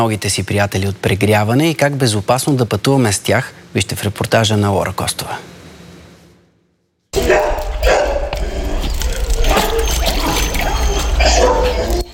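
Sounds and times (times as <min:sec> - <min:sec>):
speech: 0:00.0 - 0:05.6
many stray dogs barking at an animal shelter: 0:07.2 - 0:08.4, 0:09.0 - 0:12.1.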